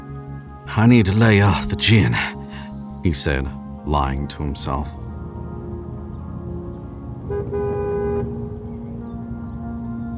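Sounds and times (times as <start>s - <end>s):
speech: 0.7s - 2.4s, 3.0s - 5.0s
car engine rumbling along a road: 5.2s - 9.1s
car horn toot: 7.3s - 8.5s.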